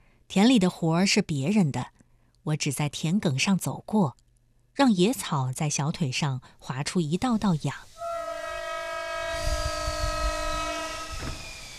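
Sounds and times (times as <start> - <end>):
speech: 0.3 - 4.2, 4.8 - 7.9
train horn blaring: 8.0 - 11.3.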